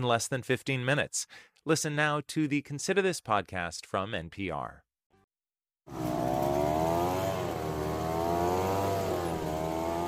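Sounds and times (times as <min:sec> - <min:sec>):
speech: 0:00.0 - 0:04.8
gas-powered leaf blower engine droning: 0:05.9 - 0:10.0.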